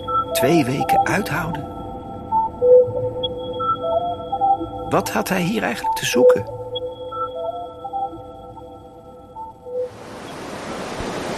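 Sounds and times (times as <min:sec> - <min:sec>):
sustained electronic tones: 0:00.0 - 0:10.5
speech: 0:00.4 - 0:01.8, 0:04.9 - 0:06.6
sea surf washing onto the beach at Scheveningen: 0:09.9 - 0:11.3.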